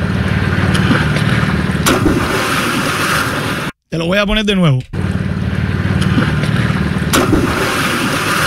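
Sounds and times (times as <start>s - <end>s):
low engine-like hum: 0.0s - 3.6s, 4.8s - 8.4s
steady rumble of wind and waves: 0.0s - 3.8s, 5.0s - 8.4s
loud watery splash sound effect: 0.2s - 3.8s, 5.8s - 8.4s
speech: 3.9s - 5.0s.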